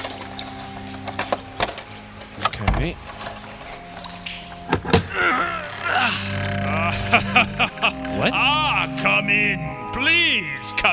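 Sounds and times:
keys jangling: 0.0 - 4.2
steady low electrical hum: 0.0 - 9.9
speech: 2.8 - 3.1
laughter: 5.1 - 9.6.

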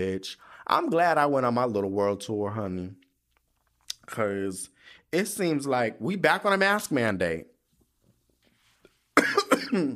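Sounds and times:
speech: 0.0 - 3.0, 4.1 - 7.5, 9.7 - 9.9
harsh coughing ending in a rough voiced hack: 9.2 - 9.9.

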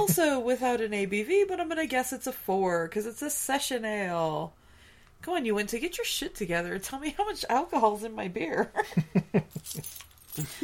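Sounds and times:
speech: 0.0 - 4.6, 5.2 - 10.6
keys jangling: 9.5 - 10.6.

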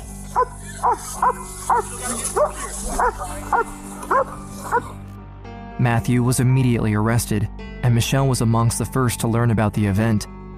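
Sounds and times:
speech: 0.4 - 4.9, 5.8 - 10.4
police dog barking: 0.4 - 5.0.

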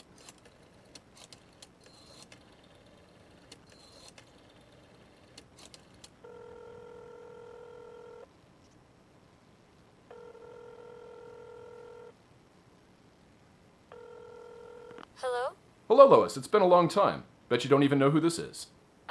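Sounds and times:
long steady electronic telephone line tones after a number is dialed: 6.2 - 8.3, 10.1 - 12.1, 13.9 - 15.0
speech: 15.2 - 18.8.

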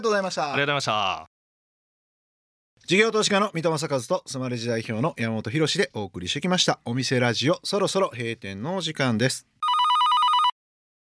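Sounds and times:
speech: 0.0 - 1.3, 2.9 - 9.6
telephone ringing: 9.6 - 10.6.

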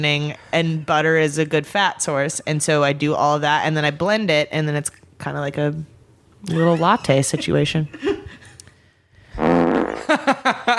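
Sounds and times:
speech: 0.0 - 8.2, 10.1 - 10.7
fart noise: 9.3 - 10.2.

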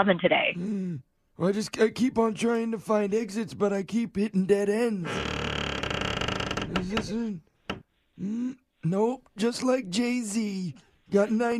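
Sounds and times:
speech: 0.0 - 5.5, 6.8 - 7.5, 8.2 - 11.5
old door hinge creaking at a storage facility: 5.0 - 7.9.

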